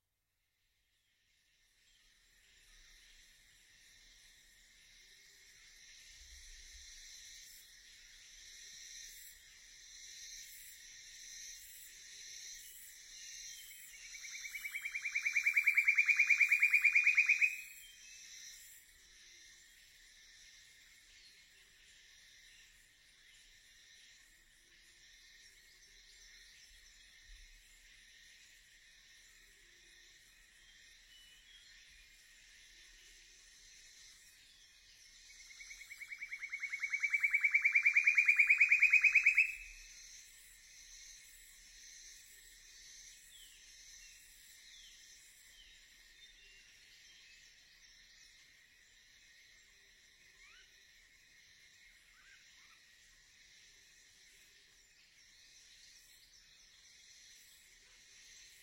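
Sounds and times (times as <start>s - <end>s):
black-billed scythebill singing: 12.8s - 19.6s, 20.4s - 58.6s.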